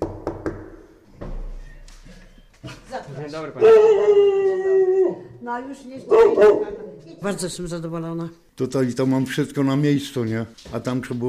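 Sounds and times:
knocking on a door: 0.0s - 1.6s
noise: 0.0s - 11.2s
speech: 2.6s - 4.7s, 5.4s - 11.2s.

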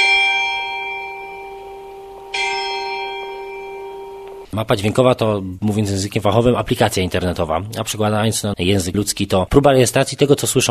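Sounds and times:
town hall bell in Leszno ringing: 0.0s - 4.5s
speech: 4.6s - 10.7s.

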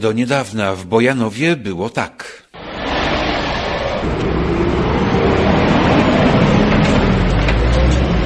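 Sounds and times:
speech: 0.0s - 2.4s
heavy trucks passing on a town road in Bojanowo: 2.6s - 8.2s.

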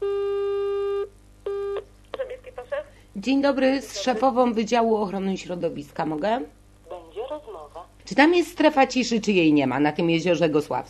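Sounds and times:
telephone call signal tones on a line to a city office: 0.0s - 1.8s
speech: 3.2s - 6.6s, 7.4s - 10.8s.

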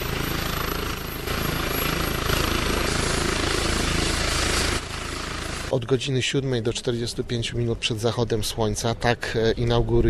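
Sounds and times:
medical rescue helicopter flying: 0.0s - 8.1s
speech: 5.7s - 10.0s.

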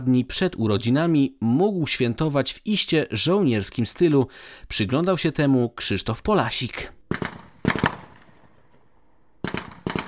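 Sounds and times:
speech: 0.0s - 7.2s
rifle shots from carbines at a military training range: 7.1s - 10.0s.

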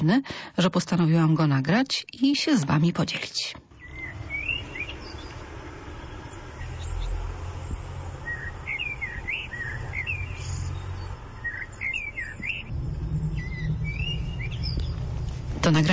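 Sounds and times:
speech: 0.0s - 3.6s, 15.7s - 15.9s
bird singing in short bright phrases: 3.7s - 15.9s
steady low rumble: 3.7s - 15.9s.

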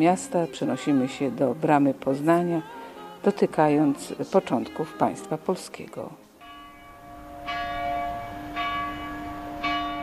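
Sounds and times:
speech: 0.0s - 6.2s
church bell tolling: 6.4s - 10.0s.

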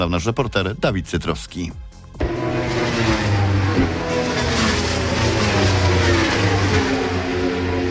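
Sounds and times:
speech: 0.0s - 1.9s
racing motorcycle engines revving on track: 2.2s - 7.8s.

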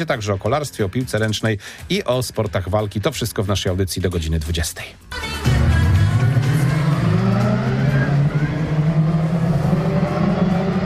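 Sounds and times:
speech: 0.0s - 5.3s
racing car engines roaring around a race track: 5.6s - 10.8s.

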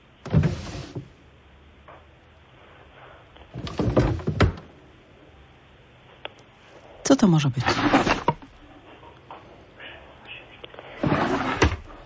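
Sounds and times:
wooden chair creaking and scraping: 0.3s - 1.1s, 3.5s - 4.7s, 7.6s - 8.5s, 10.9s - 12.0s
speech: 7.2s - 8.1s.

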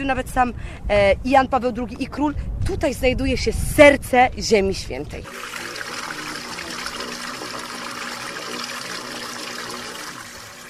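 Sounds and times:
speech: 0.0s - 5.7s
water trickling in a small pool: 5.2s - 10.6s.

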